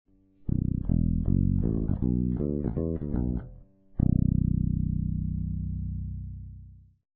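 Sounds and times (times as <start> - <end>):
electric guitar bridge pickup played with fingers: 0.4 - 6.9.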